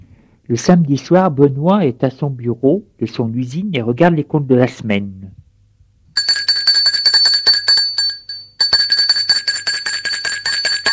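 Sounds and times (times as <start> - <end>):
speech: 0.5 - 5.4
electric bell ringing at the door of an office in a factory: 6.2 - 10.9.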